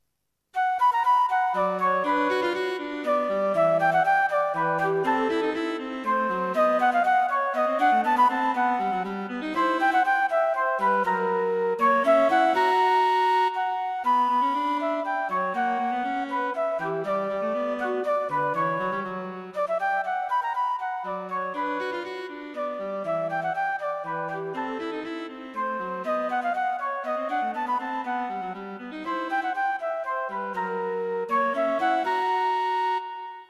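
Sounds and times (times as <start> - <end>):
flute in a duet: 0.6 - 33.4
cello in a duet: 1.6 - 19.7, 21.1 - 33.2.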